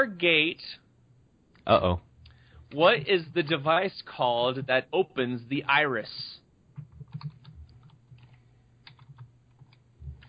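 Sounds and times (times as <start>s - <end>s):
speech: 0.0s - 0.8s, 1.6s - 2.1s, 2.7s - 6.4s
typing on a computer keyboard: 6.8s - 9.8s.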